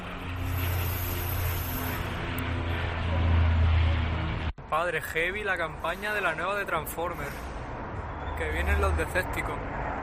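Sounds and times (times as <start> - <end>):
military aircraft flying overhead rehearsing for Armed Forces Day: 0.0 - 4.5
speech: 4.7 - 7.5, 8.4 - 9.8.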